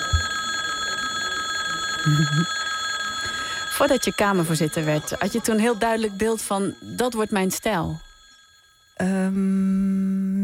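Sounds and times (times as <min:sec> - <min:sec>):
electric bell ringing in a parliament chamber: 0:00.0 - 0:09.1
speech: 0:02.0 - 0:02.6, 0:03.8 - 0:08.0, 0:09.0 - 0:10.4.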